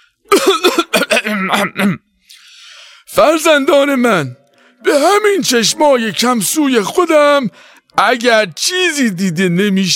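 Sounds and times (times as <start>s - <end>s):
old grandfather coughing and clearing his throat: 0.3s - 2.1s
speech: 1.5s - 2.0s, 3.2s - 9.9s.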